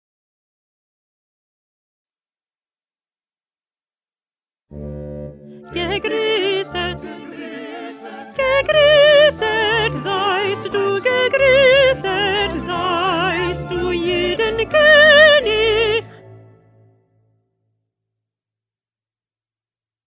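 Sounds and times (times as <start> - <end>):
first alto singing: 4.7 - 16.3.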